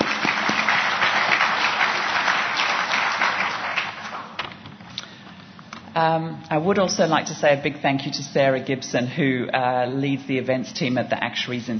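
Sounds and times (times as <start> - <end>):
crowd clapping at an Actuaries Institute event: 0.0 - 4.5
speech: 6.0 - 11.7.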